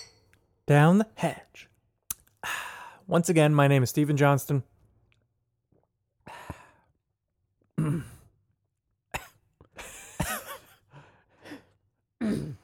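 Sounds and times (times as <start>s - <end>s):
speech: 0.7s - 1.7s, 2.4s - 4.7s
man clearing his throat: 7.8s - 8.3s, 12.2s - 12.6s
man coughing after beer went down the wrong way: 7.8s - 8.3s, 9.2s - 9.4s, 10.0s - 10.8s.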